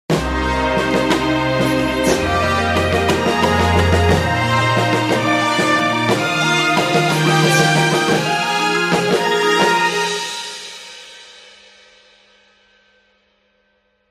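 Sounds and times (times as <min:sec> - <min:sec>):
orchestral superhero presentation music: 0:00.1 - 0:10.6.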